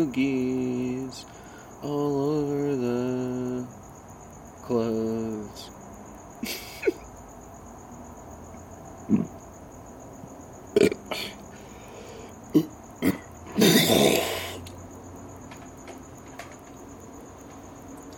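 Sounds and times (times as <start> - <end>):
speech: 0.0 - 3.8, 4.7 - 5.7
faint steady high-pitched whine: 0.0 - 18.1
short burps and a drawn-out belch: 9.0 - 9.4, 10.7 - 11.4, 12.5 - 14.7.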